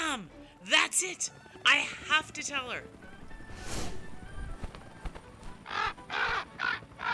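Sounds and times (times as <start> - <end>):
speech: 0.2 - 3.0
raven cawing: 5.5 - 7.1.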